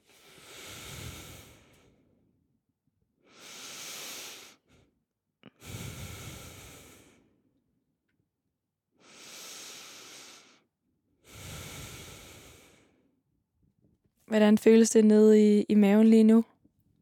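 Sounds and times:
slow deep breaths: 0.0 - 2.4, 3.2 - 7.6, 9.0 - 13.2
speech: 14.3 - 16.5.

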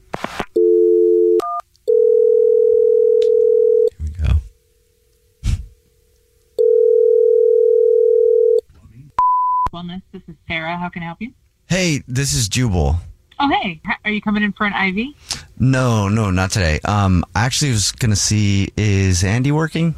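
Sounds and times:
telephone dial tone: 0.6 - 3.9, 6.6 - 8.6
telephone number dialing beeps: 9.2 - 9.7
speech: 9.8 - 19.9.

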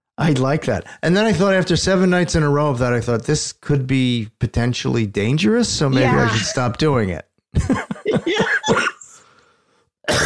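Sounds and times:
speech: 0.2 - 8.9
laughter: 6.0 - 6.8, 7.6 - 9.2
person coughing and clearing throat: 7.6 - 9.2, 10.1 - 10.2.

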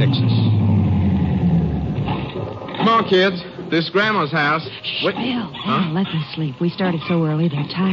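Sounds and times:
sedan engine rumbling as car pulls up and stops: 0.0 - 3.0
speech: 3.0 - 7.9.

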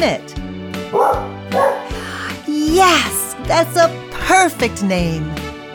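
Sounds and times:
speech: 0.0 - 1.1, 2.8 - 5.4
farm dog barking: 0.8 - 2.4.

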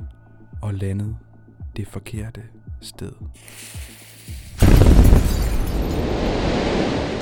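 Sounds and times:
speech: 0.6 - 4.4
house exploding, set off by a spark: 4.4 - 7.1
heavy rumbling roar of flying debris: 4.6 - 7.1.

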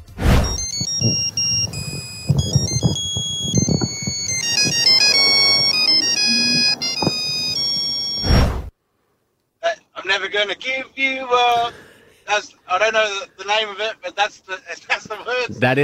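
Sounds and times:
monophonic Nokia phone ringtone playing a pop song melody: 0.4 - 8.3
faint noise: 0.8 - 15.8
speech: 12.4 - 15.8.

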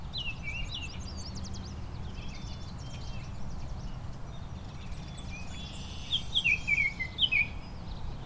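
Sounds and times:
songbird singing a varied song of chirps, trills and whistled phrases: 0.0 - 8.2.

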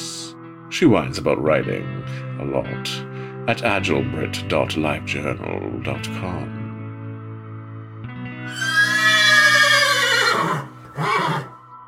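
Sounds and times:
speech: 0.8 - 6.6
horse squealing and neighing: 8.5 - 11.6.

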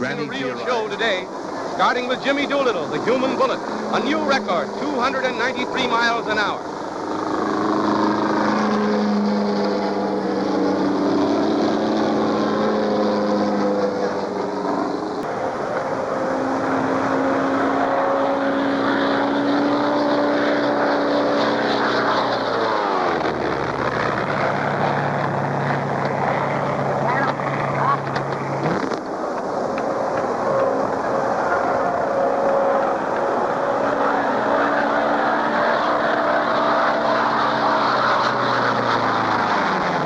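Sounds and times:
speech: 0.0 - 7.2
small racing propeller airplane engine roaring low in front of a grandstand: 0.0 - 40.0.

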